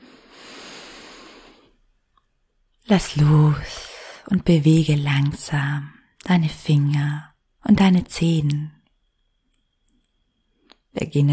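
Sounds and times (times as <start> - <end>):
deep breath drawn into the belly: 0.0 - 1.8
speech: 2.9 - 8.8, 10.9 - 11.3.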